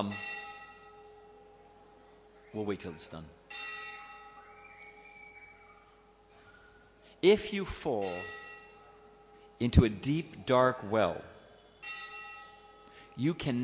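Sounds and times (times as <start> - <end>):
speech: 0.0 - 0.4, 2.6 - 3.6, 7.2 - 8.4, 9.6 - 12.0, 13.2 - 13.6
large bell tolling: 0.0 - 13.6.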